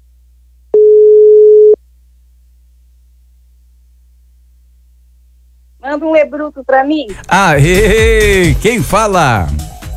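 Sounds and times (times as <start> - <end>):
telephone ringing tone while placing a call: 0.8 - 1.8
speech: 5.8 - 9.7.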